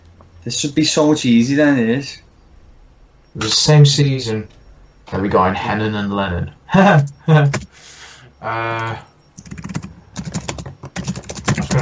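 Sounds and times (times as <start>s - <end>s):
speech: 0.4s - 2.2s, 3.4s - 9.6s
fast heavy typing on a computer keyboard: 9.4s - 11.8s.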